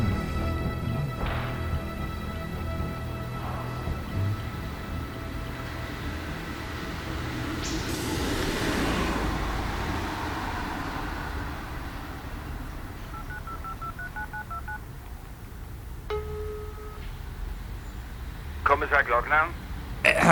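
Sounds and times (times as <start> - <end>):
low rumble: 0.0 - 20.3
mobile phone keypad beeps while dialing: 13.1 - 14.8, 16.1 - 17.0
speech: 18.8 - 20.3.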